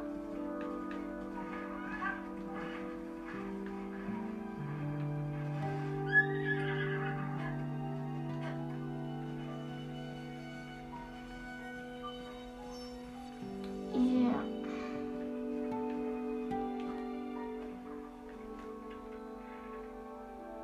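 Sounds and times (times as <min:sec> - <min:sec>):
faint rustling: 0:00.0 - 0:20.6
steady droning musical background: 0:00.0 - 0:20.6
horse whinnying in a stable: 0:06.1 - 0:08.0.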